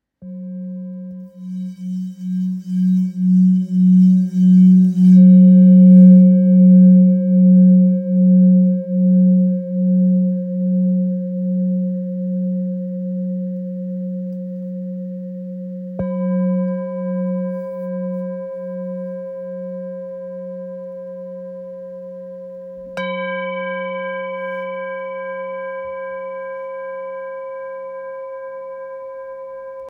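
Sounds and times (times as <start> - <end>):
old singing bowl in F sharp: 0.2 - 29.8.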